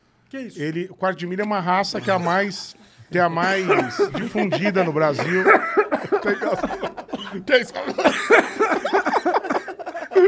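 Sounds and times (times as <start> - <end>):
speech: 0.3 - 9.4
man laughing: 2.0 - 10.2
man coughing roughly: 3.4 - 10.2.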